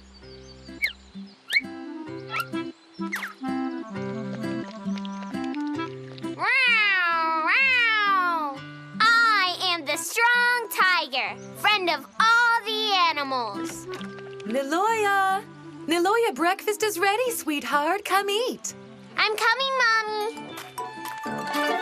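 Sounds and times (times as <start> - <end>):
musical backing: 0.0 - 21.7
cartoon cat meowing stuck up high: 6.4 - 8.6
speech: 13.2 - 20.4.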